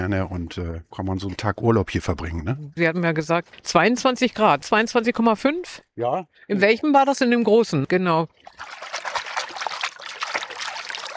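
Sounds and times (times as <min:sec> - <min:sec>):
speech: 0:00.0 - 0:09.1
water trickling and burbling with splashy bursts: 0:08.2 - 0:11.1.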